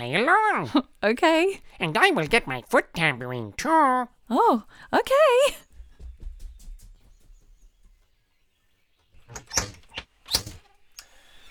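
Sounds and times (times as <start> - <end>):
speech: 0.0 - 5.7
rustling: 5.5 - 11.4
soft thumps: 5.7 - 8.0
squeaky creaking door swinging open and shut, needing repair: 9.2 - 10.8.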